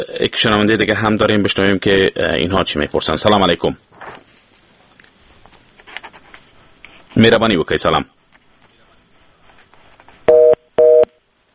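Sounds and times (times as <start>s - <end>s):
speech: 0.0s - 4.2s, 7.2s - 8.2s
telephone busy tone after a radio listener's call drops: 10.3s - 11.1s.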